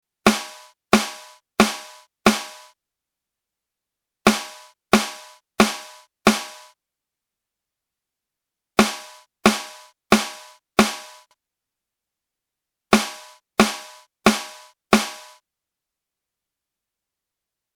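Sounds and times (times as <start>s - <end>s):
snare drum tuned to 218 Hz: 0.3s - 2.8s, 4.3s - 6.8s, 8.8s - 11.3s, 12.9s - 15.4s.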